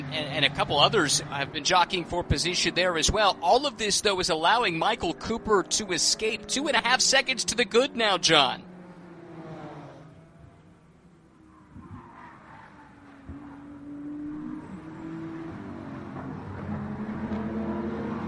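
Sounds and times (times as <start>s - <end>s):
BMW and Supra race car engines revving side by side over a hill: 0.0s - 18.2s
speech: 0.2s - 8.7s.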